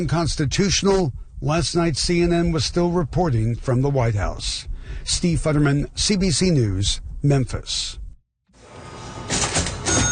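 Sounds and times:
speech: 0.0 - 8.0
antique custom-made 1907 cash register clattering in a hotel lobby: 9.2 - 10.0.

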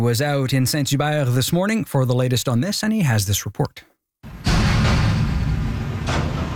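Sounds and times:
speech: 0.0 - 3.9
clanking bangs: 4.2 - 6.5
metal recycling bin slamming into the back of a garbage truck: 4.2 - 6.5.

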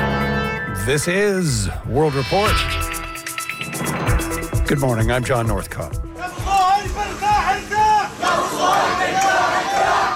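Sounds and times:
speech: 0.8 - 2.8, 3.8 - 6.0
mourners in a Gaza city funeral procession chanting and crying out: 6.2 - 10.1.

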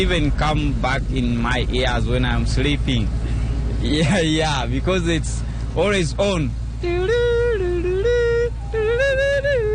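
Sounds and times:
speech: 0.0 - 7.3
low constant hum: 0.0 - 9.7
ice cream truck jingle with bright buzzy electronic melody: 6.6 - 9.7.

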